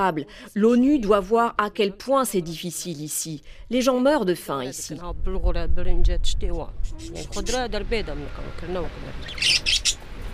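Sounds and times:
speech: 0.0s - 10.0s
small birds chirping and tweeting inside a tent: 6.8s - 8.1s, 9.0s - 10.1s.

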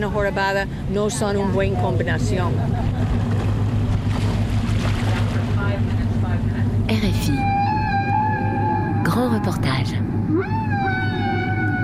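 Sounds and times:
speech: 0.0s - 3.3s, 6.9s - 7.7s, 9.1s - 10.9s
steady low underwater rumble: 1.5s - 11.8s
whale calls underwater in Samana Bay in the Dominican Republic: 7.2s - 11.8s.

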